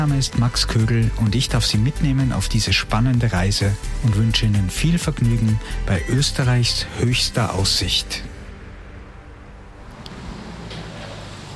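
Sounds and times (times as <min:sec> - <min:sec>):
speech: 0:00.0 - 0:08.3
road traffic rumble outdoors: 0:08.3 - 0:11.5.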